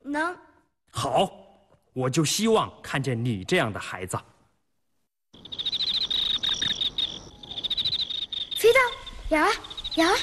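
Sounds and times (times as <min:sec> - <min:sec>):
speech: 0:01.0 - 0:01.4, 0:02.0 - 0:04.3, 0:09.3 - 0:10.2
crickets chirping: 0:05.3 - 0:10.2.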